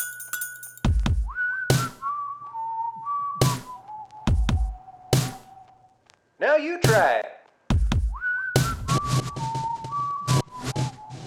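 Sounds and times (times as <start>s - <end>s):
person whistling a slow wavering melody: 1.1s - 5.8s, 8.1s - 11.2s
speech: 6.5s - 7.3s.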